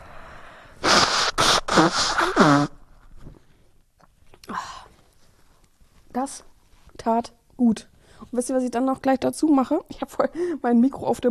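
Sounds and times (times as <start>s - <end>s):
quieter snort or sniff: 0.6s - 2.8s
person blowing nose forcefully: 0.8s - 2.9s
speech: 1.8s - 2.8s, 6.2s - 11.3s.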